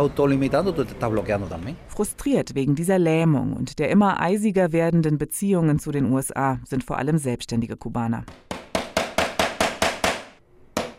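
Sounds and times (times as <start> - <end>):
speech: 0.0 - 8.5
hammering nails into a wooden frame in Cuba: 8.3 - 10.9.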